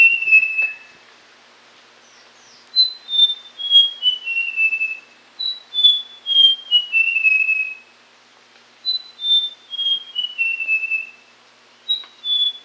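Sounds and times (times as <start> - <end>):
Papuan logrunner whistled song: 2.8 - 7.8, 8.8 - 11.2, 11.9 - 12.6.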